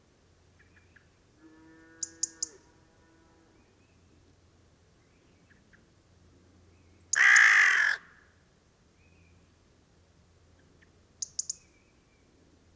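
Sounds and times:
carrion crow Corvus corone cawing: 0:07.1 - 0:08.3.

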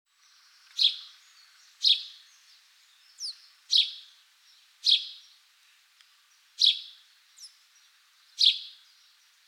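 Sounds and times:
house sparrow Passer domesticus chirping: 0:00.2 - 0:05.4, 0:06.3 - 0:09.3.

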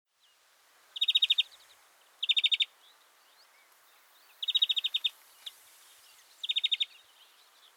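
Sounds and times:
European greenfinch Chloris chloris trilled bursts of ticking notes: 0:01.0 - 0:01.5, 0:02.2 - 0:02.7, 0:04.4 - 0:05.2, 0:06.4 - 0:07.0.

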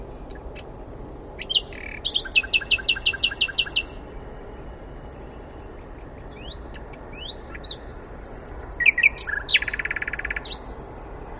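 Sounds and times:
common nightingale Luscinia megarhynchos song with clicking notes and rising whistles: 0:00.0 - 0:11.3.

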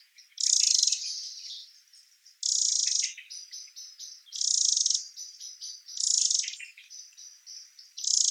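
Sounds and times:
Eurasian wren singing: 0:00.0 - 0:08.2.

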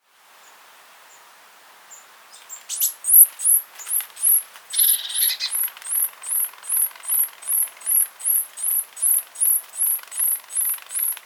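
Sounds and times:
Eurasian blue tit (Cyanistes caeruleus) calling: 0:01.9 - 0:11.2.

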